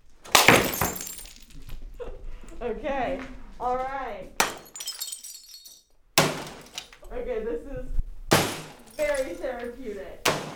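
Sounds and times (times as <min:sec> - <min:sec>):
glass shattering in an enclosed rage room: 0:00.3 - 0:01.6, 0:04.4 - 0:07.0, 0:08.3 - 0:09.6
debris rattling: 0:00.3 - 0:01.8, 0:04.4 - 0:07.0, 0:08.3 - 0:09.7
speech: 0:02.6 - 0:04.4, 0:07.1 - 0:08.0, 0:09.0 - 0:10.5.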